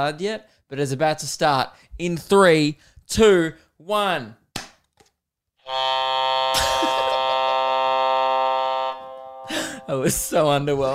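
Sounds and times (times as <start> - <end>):
speech: 0.0 - 4.4, 9.9 - 10.9
desk buzzer pressed and held, harsh electronic drone: 5.6 - 10.4.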